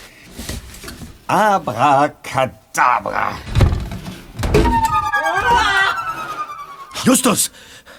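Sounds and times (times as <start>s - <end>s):
speech: 1.3s - 3.5s, 7.0s - 7.8s
wooden cabinet door thudding shut: 3.5s - 4.7s
shimmering warbling electronic tone: 4.7s - 7.6s.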